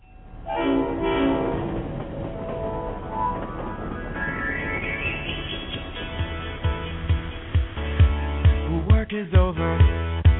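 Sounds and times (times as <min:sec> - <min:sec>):
steady rumbling of a train sound effect: 0:00.0 - 0:10.3
rhythmic clacking of train wheels on rails: 0:00.1 - 0:08.8
train horn blast sound effect in a song intro: 0:00.4 - 0:02.0.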